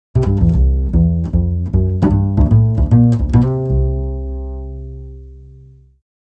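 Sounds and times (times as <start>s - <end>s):
pizzicato strings: 0.2s - 5.0s.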